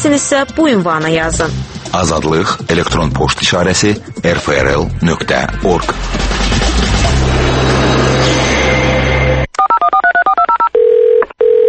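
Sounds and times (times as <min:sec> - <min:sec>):
speech: 0:00.0 - 0:06.8
steady rumbling noise: 0:04.9 - 0:09.5
touch-tone beeps dialing a telephone number: 0:09.6 - 0:11.6.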